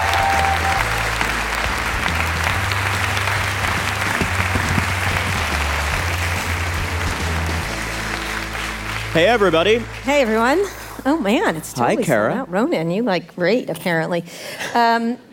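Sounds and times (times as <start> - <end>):
large audience applause: 0.0 - 11.6
speech: 9.2 - 15.3.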